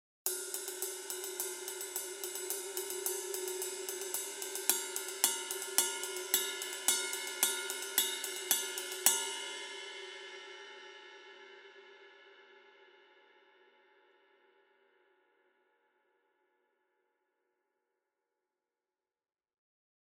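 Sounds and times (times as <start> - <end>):
custom ride cymbal: 0.3 - 10.3.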